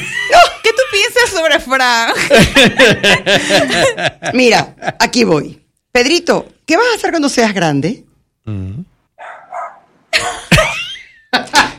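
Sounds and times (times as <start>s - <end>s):
speech: 1.2s - 8.9s
laughter: 2.2s - 5.1s, 10.2s - 11.7s
dog barking in short harsh bursts: 9.2s - 9.9s.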